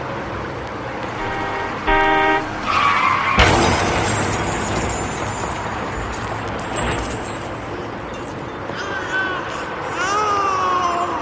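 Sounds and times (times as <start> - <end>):
road noise: 0.0 - 11.2
tires skidding: 0.3 - 7.9
car horn honking: 1.1 - 3.8
crashing impact: 1.2 - 7.8.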